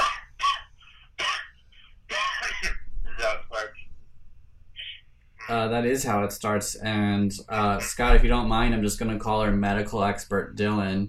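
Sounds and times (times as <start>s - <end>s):
rough throat clearing: 0.0s - 2.8s
speech: 5.5s - 11.0s.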